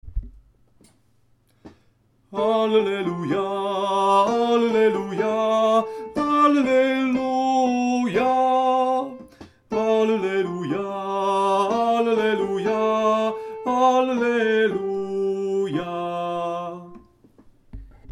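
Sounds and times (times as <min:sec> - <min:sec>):
soprano singing an alleluia: 0:02.3 - 0:17.2.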